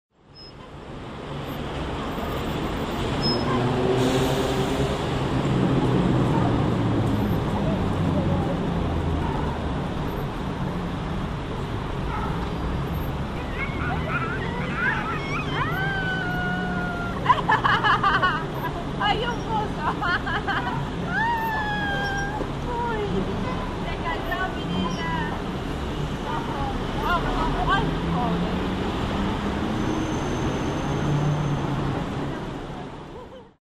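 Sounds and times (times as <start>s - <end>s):
park ambience in Mariano Moreno: 0.2s - 33.6s
laughter: 13.6s - 18.9s, 19.7s - 22.3s.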